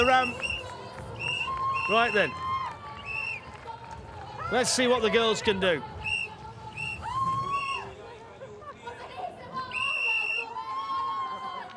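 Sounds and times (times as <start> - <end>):
sustained high whistle tones: 0.0 - 2.3, 6.0 - 7.9, 9.7 - 10.5
crowd babble and chatter: 0.0 - 11.7
speech: 0.1 - 0.5, 1.9 - 2.4, 4.5 - 5.9.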